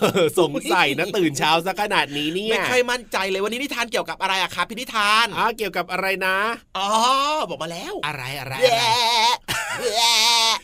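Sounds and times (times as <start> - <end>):
speech: 0.0 - 10.6
voice imitating a goat bleating in a broadcast studio: 8.5 - 10.6.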